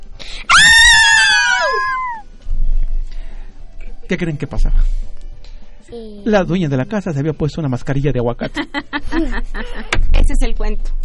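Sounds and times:
loud high-pitched scream: 0:00.5 - 0:02.2
speech: 0:04.1 - 0:05.1, 0:05.9 - 0:11.0
laughter: 0:08.4 - 0:10.0.

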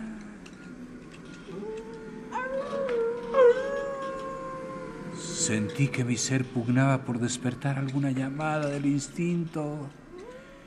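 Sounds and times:
dogs howling in a hidden valley under moonlight: 0:01.4 - 0:06.9
speech: 0:05.5 - 0:10.0.

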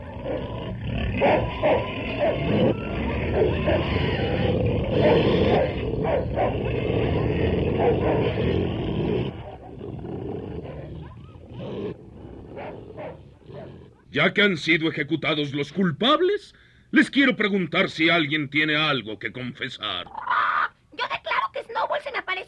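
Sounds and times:
dogs snarling and growling ferociously, attacking: 0:00.0 - 0:14.1
speech: 0:01.2 - 0:08.9, 0:14.1 - 0:20.5.

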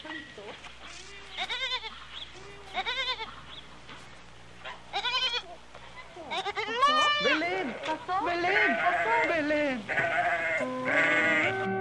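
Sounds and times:
sheep bleating in a flock: 0:01.3 - 0:03.4, 0:04.9 - 0:05.6, 0:06.2 - 0:11.7.

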